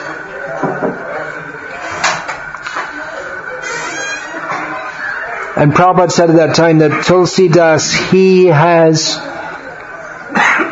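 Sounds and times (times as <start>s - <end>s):
murmur of voices: 0.0s - 10.7s
squeaky door hinge creaking: 3.5s - 4.8s
speech: 5.6s - 9.3s.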